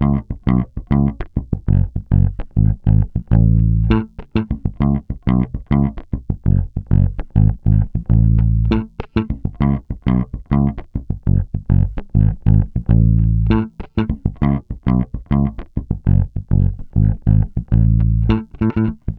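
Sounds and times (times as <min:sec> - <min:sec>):
electric bass loop: 0:00.0 - 0:19.1.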